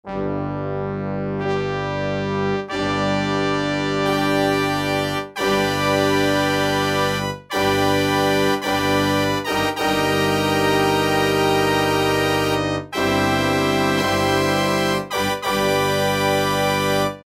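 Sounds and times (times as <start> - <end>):
orchestral brass preset on an E-mu Proteus-1 synthesizer: 0.0 - 17.2.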